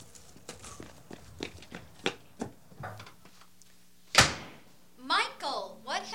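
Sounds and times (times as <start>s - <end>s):
hurried footsteps: 0.0s - 3.3s
door slamming: 4.1s - 4.6s.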